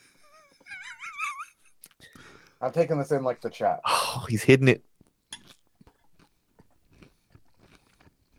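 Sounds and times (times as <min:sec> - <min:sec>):
speech: 0:02.6 - 0:04.9
crunchy chewing of a mouthful of salad: 0:05.0 - 0:08.3.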